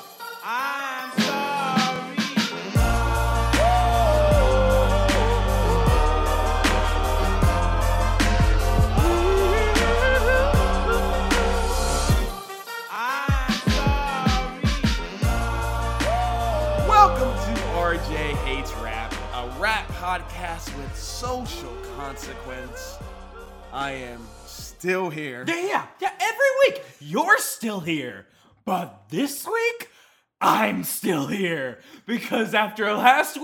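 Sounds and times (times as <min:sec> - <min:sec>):
rap music playing: 0:00.0 - 0:24.9
speech: 0:00.4 - 0:01.3, 0:20.0 - 0:23.0, 0:23.7 - 0:33.4
sharp percussion: 0:01.2 - 0:24.4
heavy booming bass pattern: 0:02.8 - 0:12.3, 0:15.2 - 0:24.6.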